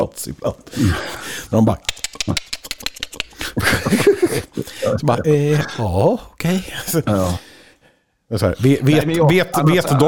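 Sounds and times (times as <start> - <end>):
speech: 0.0 - 2.4, 4.5 - 7.5, 8.3 - 10.0
voice actor imitating creature-like clicking and throaty sounds: 1.7 - 5.4
laughter: 3.3 - 5.8.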